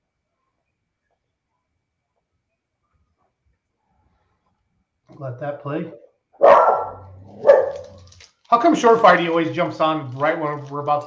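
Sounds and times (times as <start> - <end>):
speech: 5.2 - 6.6, 8.5 - 11.0
dog barking: 6.4 - 8.0.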